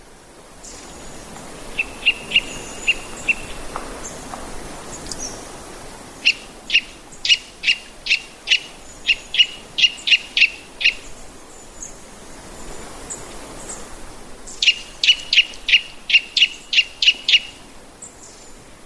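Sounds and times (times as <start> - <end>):
quiet hiss: 0.0 - 18.8
white-bellied Eurasian nuthatch singing on a forest road in Hokkaido: 1.7 - 4.2, 6.2 - 12.0, 14.5 - 18.5.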